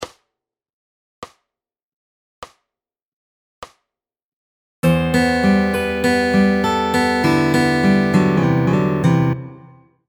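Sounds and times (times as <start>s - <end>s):
fingerpicked guitar lick: 4.8s - 9.8s.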